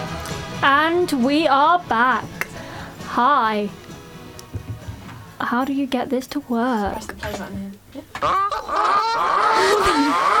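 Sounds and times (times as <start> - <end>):
speech: 0.6 - 2.4, 3.1 - 3.8, 5.4 - 10.3
goose squawking: 8.2 - 10.3.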